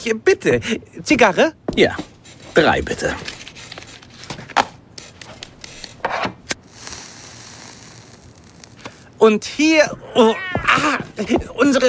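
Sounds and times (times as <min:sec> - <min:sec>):
speech: 0:00.0 - 0:03.4, 0:09.2 - 0:11.8
white cat meowing: 0:10.2 - 0:10.8.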